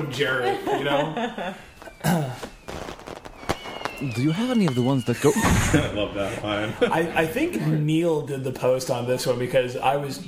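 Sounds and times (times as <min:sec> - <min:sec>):
laughter: 0:00.0 - 0:02.5, 0:04.2 - 0:08.0
speech: 0:00.0 - 0:02.5, 0:04.0 - 0:10.2
fireworks bang: 0:01.6 - 0:07.3
fireworks crackling pops: 0:01.7 - 0:05.9.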